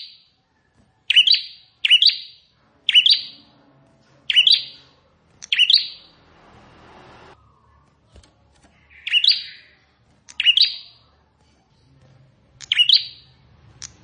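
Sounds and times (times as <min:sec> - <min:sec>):
plain prinia song with buzzy chirps: 0:01.1 - 0:03.5, 0:04.3 - 0:06.2, 0:08.7 - 0:11.0.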